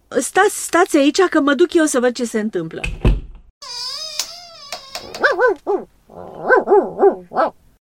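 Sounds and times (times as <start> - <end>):
speech: 0.1 - 3.0, 5.4 - 7.6
dog whining in hallway: 3.7 - 7.6
dog barking in hallway: 5.2 - 7.6.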